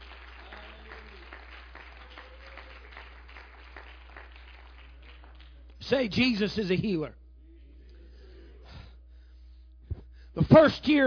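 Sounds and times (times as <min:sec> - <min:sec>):
crowd clapping hands: 0:00.0 - 0:06.1
faint low hum: 0:00.0 - 0:11.0
speech: 0:05.9 - 0:07.2, 0:10.4 - 0:11.0.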